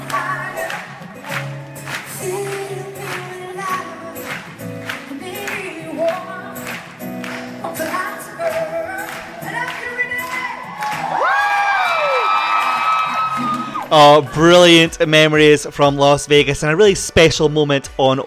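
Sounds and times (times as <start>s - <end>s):
live-concert crowd cheering and clapping: 0.0s - 14.9s
live concert music: 0.0s - 18.2s
audience member screaming at live concert: 10.8s - 14.0s
speech: 13.9s - 18.2s.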